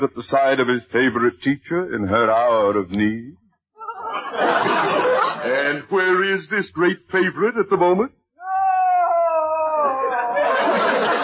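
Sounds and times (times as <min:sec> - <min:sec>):
speech: 0:00.0 - 0:03.4, 0:04.3 - 0:08.2
laughter: 0:03.8 - 0:06.2, 0:09.2 - 0:11.2
woman wailing: 0:08.4 - 0:10.8.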